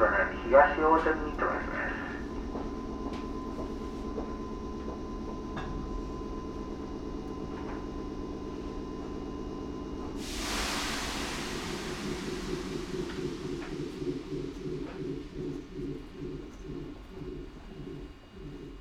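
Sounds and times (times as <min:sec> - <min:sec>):
express train interior rumble in motion: 0:00.0 - 0:09.2, 0:10.0 - 0:18.8
constant hum: 0:00.0 - 0:18.8
speech: 0:00.5 - 0:01.8
rhythmic clattering of train: 0:11.3 - 0:18.8.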